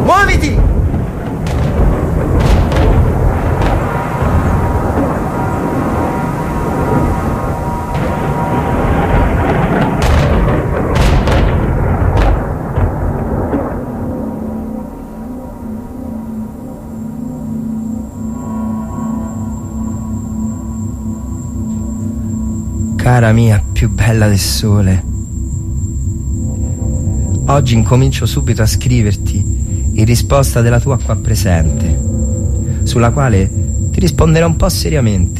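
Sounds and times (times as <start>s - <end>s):
steady hum with faint tonal notes: 0.0s - 35.3s
artillery fire barrage: 0.6s - 5.2s, 7.9s - 13.9s
speech: 23.3s - 25.1s, 27.6s - 29.4s, 30.0s - 32.1s, 32.9s - 35.3s.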